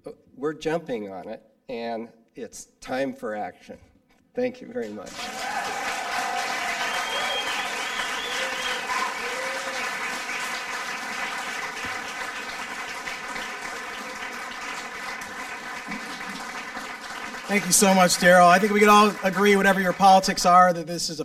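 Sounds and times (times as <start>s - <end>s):
speech: 0.0s - 5.5s, 17.5s - 21.2s
audience applauding: 4.8s - 20.7s.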